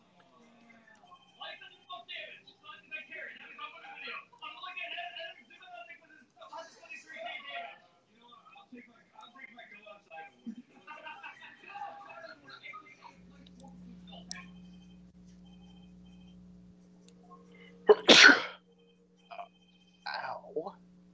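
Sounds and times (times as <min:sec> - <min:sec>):
faint talk: 0:00.0 - 0:14.6, 0:20.1 - 0:20.7
low steady hum: 0:00.0 - 0:21.1
sneeze: 0:17.9 - 0:18.6.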